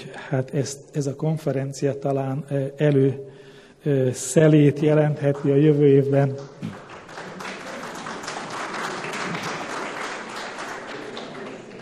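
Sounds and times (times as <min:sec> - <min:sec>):
speech: 0:00.1 - 0:06.8
audience applause: 0:06.6 - 0:11.8.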